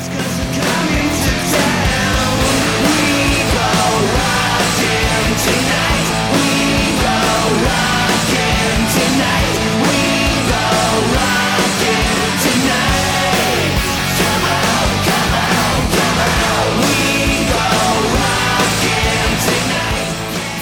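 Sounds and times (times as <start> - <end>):
dense distorted guitars in a 1983 Swedish hard rock song: 0.0 - 20.6
energetic hard rock vocals: 0.0 - 20.6.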